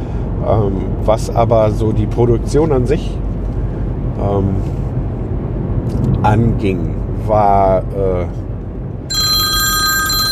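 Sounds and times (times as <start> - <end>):
low rumble: 0.0 - 10.3
speech: 0.5 - 3.2, 4.2 - 4.8, 5.9 - 8.5
telephone ringing with high electronic ring: 9.1 - 10.3.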